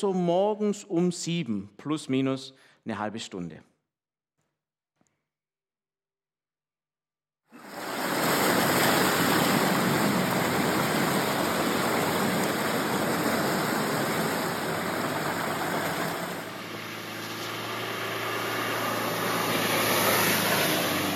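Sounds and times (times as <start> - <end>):
speech: 0.0 - 3.7
heavy rain pouring during the rainy season: 7.6 - 21.1.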